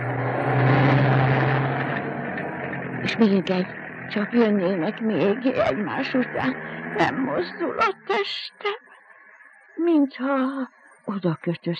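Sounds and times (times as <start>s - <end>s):
car passing by: 0.0s - 4.1s, 5.2s - 7.6s
speech: 3.2s - 8.8s, 9.8s - 11.7s.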